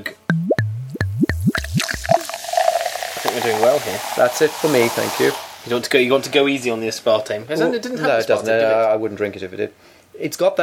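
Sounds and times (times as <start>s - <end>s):
rhythmic glugs of a drink poured from a bottle: 0.0s - 2.4s
soft splashing trickle of a drink into a glass: 0.4s - 5.7s
drink pouring from a bottle into a glass: 1.3s - 5.7s
speech: 3.4s - 10.6s.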